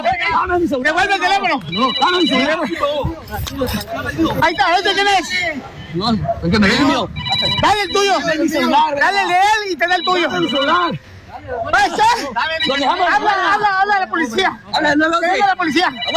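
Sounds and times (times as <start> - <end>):
loud overlapping crowd voices and commotion: 0.0 - 16.1
speech: 0.4 - 16.1
mobile phone ringtone muffled in a bag: 1.6 - 3.0, 4.3 - 5.3, 6.7 - 11.0, 12.0 - 13.6, 14.6 - 16.1.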